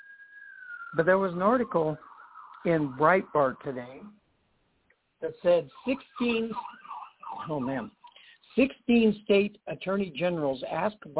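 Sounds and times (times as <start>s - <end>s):
ambulance siren passing by: 0.0s - 4.2s, 5.3s - 8.3s
speech: 0.9s - 4.2s, 5.2s - 8.0s, 8.6s - 11.1s.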